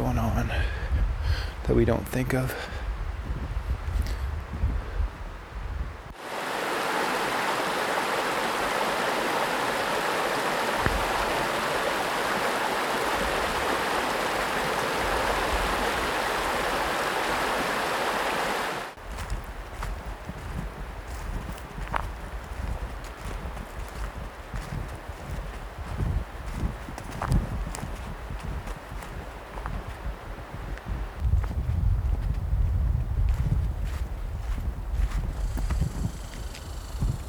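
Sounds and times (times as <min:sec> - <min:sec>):
outdoor ambience: 0:00.0 - 0:37.2
speech: 0:01.7 - 0:02.8
brook flowing in the woods: 0:06.1 - 0:27.1.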